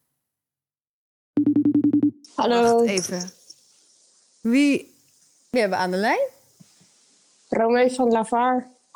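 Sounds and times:
ringing tone of an outgoing phone call: 0:01.4 - 0:02.2
speech: 0:02.3 - 0:03.4, 0:04.4 - 0:04.9, 0:05.5 - 0:06.4, 0:07.5 - 0:08.8.

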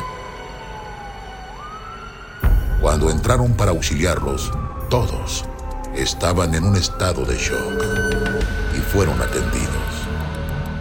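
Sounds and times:
police car siren wailing: 0:00.0 - 0:10.7
speech: 0:03.0 - 0:09.9.

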